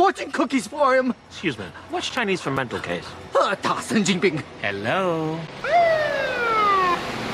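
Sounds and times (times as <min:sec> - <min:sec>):
speech: 0:00.1 - 0:06.2
alarm blaring: 0:05.6 - 0:07.2.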